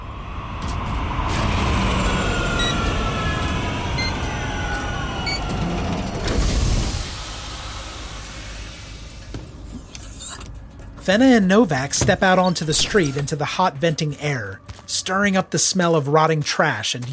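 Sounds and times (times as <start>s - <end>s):
flying police car engine humming and whining as it banks to land: 0.0s - 13.3s
speech: 11.1s - 17.1s.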